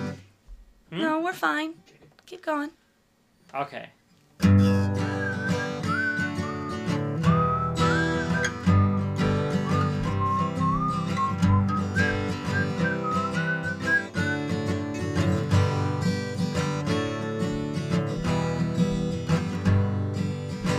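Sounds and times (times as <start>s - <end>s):
speech: 1.0s - 2.8s, 3.5s - 4.5s
steady instrumental accompaniment: 4.4s - 20.7s
person whistling a wavering melody: 4.6s - 15.1s.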